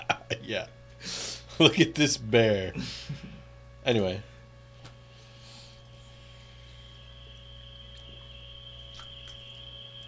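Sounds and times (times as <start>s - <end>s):
low electrical hum: 0.0s - 10.0s
speech: 0.5s - 4.3s
faint crickets chirping in a high trill: 5.1s - 10.0s.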